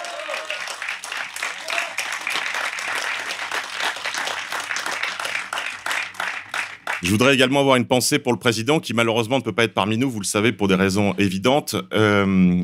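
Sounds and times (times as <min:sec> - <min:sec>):
crowd applauding volunteers, activists, staff, security and catering: 0:00.0 - 0:07.2
speech: 0:07.0 - 0:12.6.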